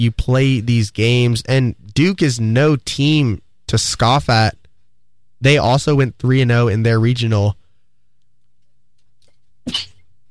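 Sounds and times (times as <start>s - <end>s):
speech: 0.0s - 4.6s, 5.4s - 7.6s, 9.6s - 9.9s
sneeze: 9.6s - 10.0s.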